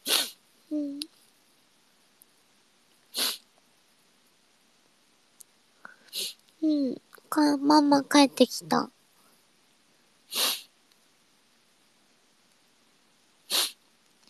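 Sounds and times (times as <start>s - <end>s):
sharp breathy sneezes: 0.0s - 0.4s, 3.1s - 3.4s, 5.9s - 6.4s, 10.3s - 10.7s, 13.5s - 13.8s
speech: 7.4s - 9.0s.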